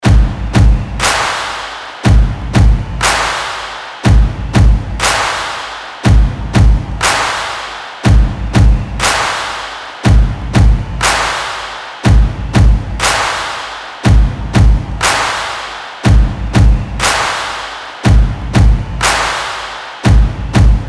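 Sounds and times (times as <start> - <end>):
drum loop at 120 BPM: 0.0 - 20.8.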